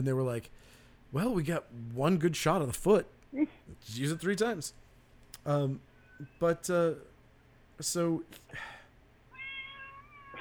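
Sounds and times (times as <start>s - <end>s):
speech: 0.0s - 4.8s, 5.4s - 7.1s, 7.8s - 8.8s
cat wanting to come in meowing: 9.3s - 10.4s.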